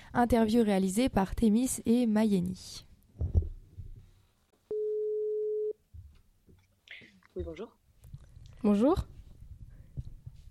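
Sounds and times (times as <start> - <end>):
speech: 0.1 - 3.3, 7.4 - 7.8, 8.6 - 9.1
telephone ringing tone: 4.7 - 5.8.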